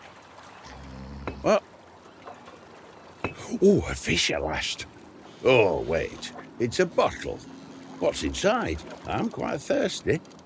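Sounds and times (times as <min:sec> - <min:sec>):
lake water lapping against a small boat: 0:00.0 - 0:10.4
speech: 0:01.4 - 0:01.7, 0:03.6 - 0:10.4.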